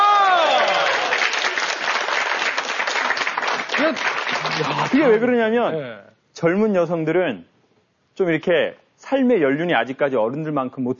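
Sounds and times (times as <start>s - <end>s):
room full of people applauding: 0.0s - 5.2s
speech: 3.8s - 7.5s, 8.2s - 10.9s.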